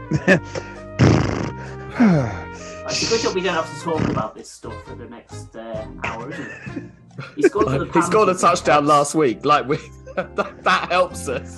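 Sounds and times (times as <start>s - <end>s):
laughter: 0.0s - 0.9s, 2.2s - 3.4s, 6.0s - 11.5s
speech: 0.1s - 11.5s
person imitating horse snorts: 0.4s - 3.4s, 4.0s - 4.4s.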